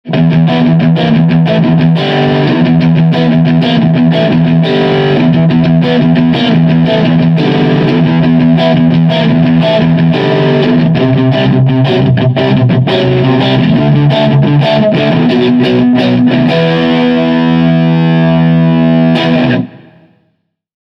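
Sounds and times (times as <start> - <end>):
Stratocaster electric guitar with modern overdrive: 0.0 - 20.2.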